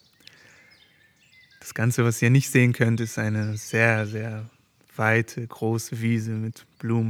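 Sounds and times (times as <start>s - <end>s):
faint outdoor birdsong with high chirps and whistled notes: 0.0s - 7.0s
speech: 1.7s - 7.0s.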